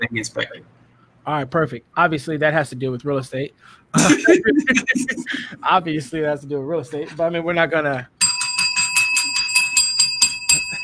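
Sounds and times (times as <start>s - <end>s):
speech: 0.0s - 8.2s
laughter: 4.0s - 5.6s
small handbell ringing in an office: 8.2s - 10.8s.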